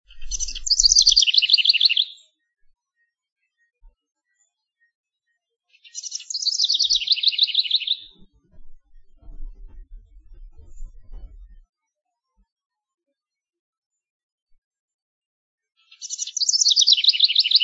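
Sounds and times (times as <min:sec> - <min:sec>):
faint low rumbling: 0:00.0 - 0:00.9, 0:08.1 - 0:11.6
house wren song: 0:00.1 - 0:02.3, 0:05.8 - 0:08.2, 0:15.9 - 0:17.6.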